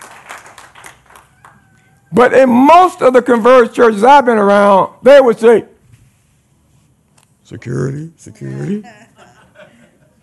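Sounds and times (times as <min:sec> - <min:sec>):
audience clapping hands: 0:00.0 - 0:01.7
speech: 0:02.1 - 0:05.7, 0:07.5 - 0:09.1
laughter: 0:08.6 - 0:10.2.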